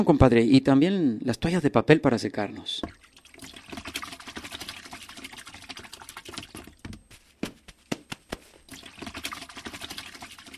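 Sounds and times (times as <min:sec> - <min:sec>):
speech: 0:00.0 - 0:03.6
water pouring into a tank: 0:02.5 - 0:07.1, 0:08.6 - 0:10.5.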